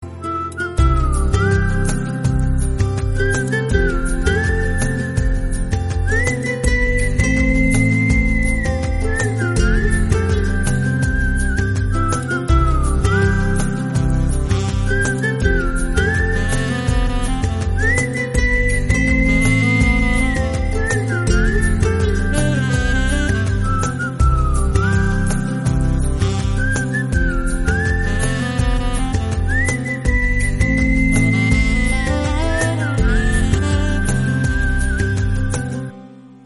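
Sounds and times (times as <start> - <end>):
romantic flute music: 0.0 - 36.4.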